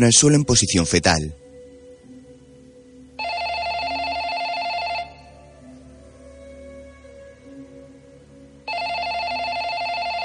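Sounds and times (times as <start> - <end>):
speech: 0.0 - 1.4
telephone ringing with electronic trill: 3.2 - 5.3, 8.7 - 10.2.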